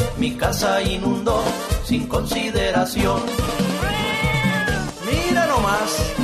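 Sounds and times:
steady rhythmic beat: 0.0s - 6.2s
speech: 0.2s - 3.7s
cat meowing: 3.8s - 5.0s.

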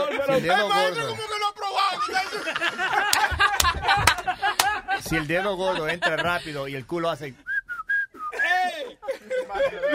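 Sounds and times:
laughter: 0.0s - 6.9s, 8.3s - 9.9s
speech: 0.3s - 1.4s, 5.1s - 7.5s
person whistling short notes mimicking a sound: 7.5s - 8.4s.

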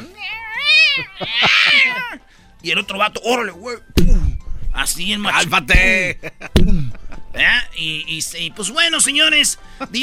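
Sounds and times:
human voice imitating a cat meowing and yowling: 0.0s - 2.2s
laughter: 0.9s - 2.2s, 6.0s - 7.4s
speech: 2.6s - 4.0s, 4.8s - 10.0s.

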